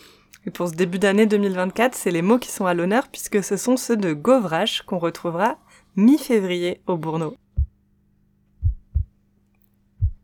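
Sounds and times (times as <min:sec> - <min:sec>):
speech: 0:00.4 - 0:07.4
low heartbeat: 0:07.5 - 0:07.8, 0:08.6 - 0:09.2, 0:10.0 - 0:10.2.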